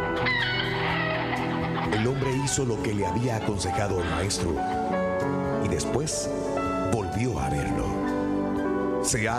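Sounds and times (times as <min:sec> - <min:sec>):
chickens clucking and squawking: 0:00.1 - 0:04.7
speech: 0:02.0 - 0:05.1, 0:05.7 - 0:07.9, 0:09.1 - 0:09.3.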